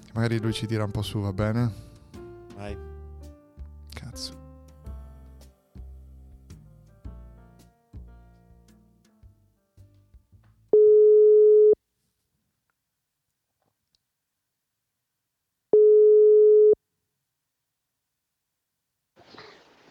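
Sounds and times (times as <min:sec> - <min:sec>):
speech: 0:00.2 - 0:01.9, 0:02.6 - 0:02.9, 0:04.2 - 0:04.4
phone ringback tone while placing a call: 0:10.8 - 0:11.8, 0:15.8 - 0:16.8.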